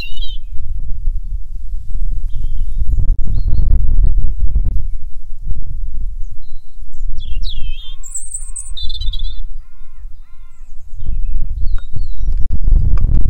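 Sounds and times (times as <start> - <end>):
several birds singing and calling outdoors: 0.0 - 0.7, 2.3 - 5.2, 6.2 - 13.0
low rumbling wind or traffic murmur: 0.0 - 13.2.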